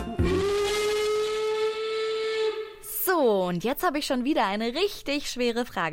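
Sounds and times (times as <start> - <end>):
steam train whistle: 0.2 - 2.9
speech: 3.5 - 5.9.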